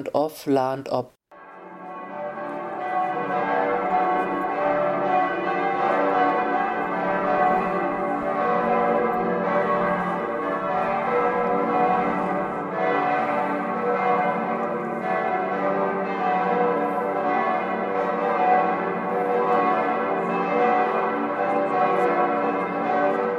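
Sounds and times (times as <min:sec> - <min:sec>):
speech: 0:00.0 - 0:01.2
large church bells in Bremen ringing: 0:01.4 - 0:23.3.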